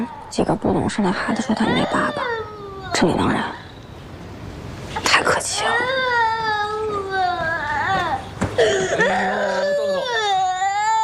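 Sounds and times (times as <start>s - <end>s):
speech: 0.0s - 3.6s
child crying: 1.5s - 3.0s, 5.8s - 11.0s.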